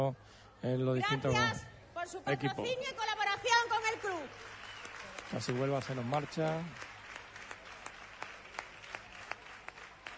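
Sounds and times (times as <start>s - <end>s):
speech: 0.0s - 4.6s, 5.3s - 6.9s
audience applauding for sponsors: 3.6s - 10.1s.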